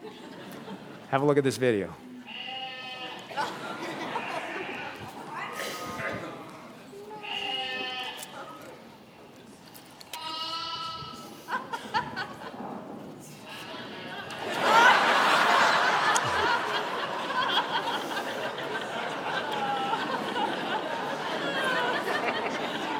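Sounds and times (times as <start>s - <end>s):
laughter: 0.0s - 1.6s, 3.0s - 10.2s, 11.0s - 22.9s
indistinct chatter: 0.0s - 22.9s
noise: 0.0s - 22.9s
speech: 1.1s - 2.0s
sheep bleating in a played video: 2.2s - 3.4s, 4.0s - 5.1s, 7.0s - 8.5s, 10.2s - 11.3s.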